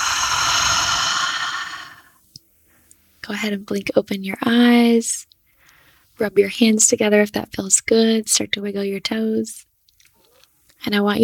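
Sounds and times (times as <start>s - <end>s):
deep clearing breath exhale during a guided relaxation exercise: 0.0s - 2.1s
speech: 3.3s - 5.4s, 6.2s - 9.7s, 10.8s - 11.2s.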